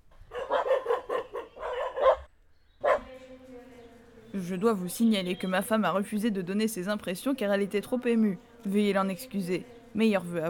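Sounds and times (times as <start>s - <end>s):
small dog barking: 0.3s - 3.1s
speech: 4.5s - 10.4s.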